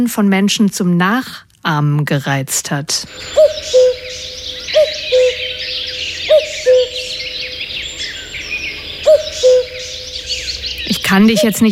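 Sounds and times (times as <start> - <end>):
speech: 0.0 - 4.3, 11.1 - 11.7
chorus of smaller birds twittering in the woods: 3.1 - 11.7
common cuckoo calling its two-note descending call: 3.1 - 11.7.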